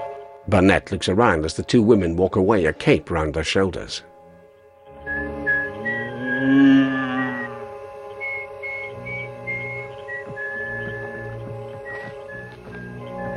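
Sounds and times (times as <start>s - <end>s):
speech: 0.5s - 4.1s
bulldogger whistling a light wandering tune: 5.1s - 7.5s, 8.2s - 11.3s, 11.8s - 13.3s.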